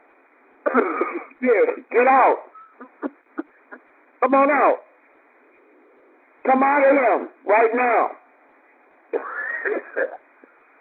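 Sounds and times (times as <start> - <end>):
faint hiss: 0.0 - 10.7
person coughing harshly during a deliverance prayer: 0.6 - 1.9, 9.2 - 10.3
speech: 0.7 - 2.5, 4.2 - 4.9, 6.4 - 8.2, 9.1 - 10.2.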